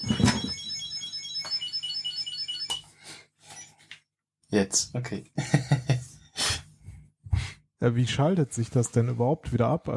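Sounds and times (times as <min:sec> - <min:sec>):
Find My tracker electronic alert tone in a phone-like melody of high beeps: 0:00.0 - 0:02.8
speech: 0:04.5 - 0:05.9, 0:07.8 - 0:09.9
laughter: 0:05.4 - 0:06.1.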